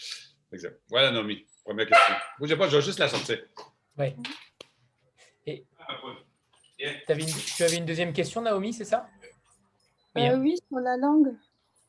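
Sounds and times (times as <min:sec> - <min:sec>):
speech: 0:00.5 - 0:04.4, 0:05.5 - 0:09.3, 0:10.1 - 0:11.5
female dog barking: 0:01.9 - 0:02.4.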